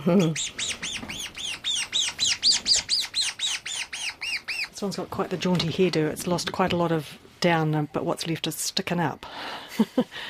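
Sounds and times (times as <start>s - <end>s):
speech: 0.0s - 0.6s, 4.8s - 10.2s
seabird chick on Mana Island squawking while being handled during processing: 0.2s - 4.8s.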